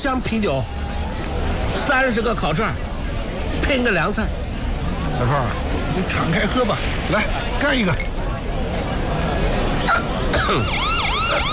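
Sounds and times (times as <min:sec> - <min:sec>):
speech: 0:00.0 - 0:00.8, 0:01.8 - 0:02.9, 0:03.5 - 0:04.4, 0:05.1 - 0:08.1, 0:10.3 - 0:11.5
crowd chatter at a barbecue restaurant: 0:00.0 - 0:11.5
police car siren wailing at a barbecue restaurant: 0:10.4 - 0:11.5.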